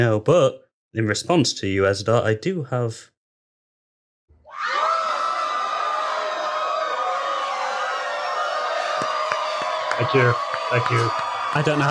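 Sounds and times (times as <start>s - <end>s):
speech: 0.0s - 3.1s, 10.0s - 11.8s
sitcom studio audience whooping, hollering and cheering: 4.4s - 11.8s.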